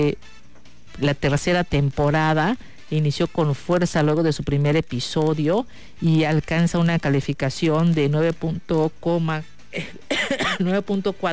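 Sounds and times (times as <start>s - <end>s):
speech: 0.0s - 11.3s
raspy partly voiced coughing fit: 9.7s - 10.7s.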